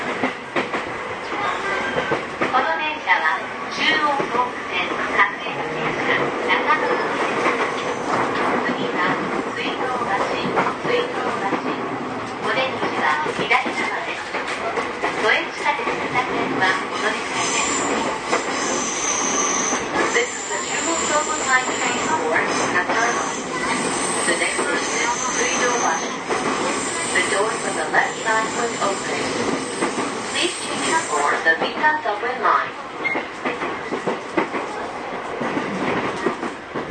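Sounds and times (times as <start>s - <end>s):
commuter train in motion rolling rumble: 0.0s - 36.8s.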